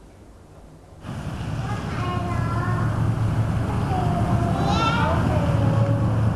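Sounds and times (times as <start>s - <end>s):
wind rushing through trees: 1.0s - 6.3s.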